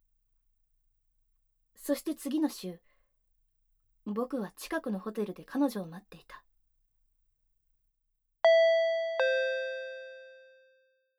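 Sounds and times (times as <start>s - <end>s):
speech: 1.9s - 2.9s, 4.0s - 6.5s
two-tone hotel room intercom chime: 8.5s - 10.4s.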